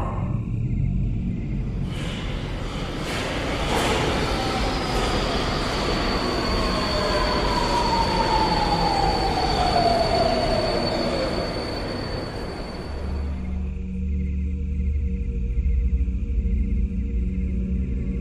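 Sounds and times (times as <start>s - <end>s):
subway train moving through a metro station: 0.0s - 18.1s
subway train wheel squeal: 1.8s - 13.8s.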